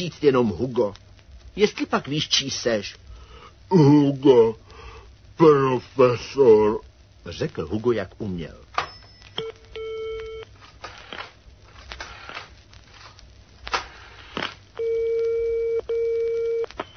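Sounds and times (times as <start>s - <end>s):
speech: 0.0s - 1.0s, 1.6s - 3.0s, 3.7s - 4.6s, 5.4s - 8.6s
telephone ringing tone from the handset: 14.8s - 16.9s.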